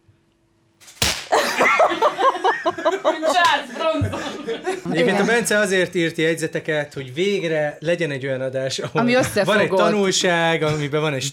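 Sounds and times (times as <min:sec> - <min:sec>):
sharp slap: 0:00.8 - 0:01.5
people chuckling: 0:01.3 - 0:05.5
speech: 0:02.6 - 0:11.3.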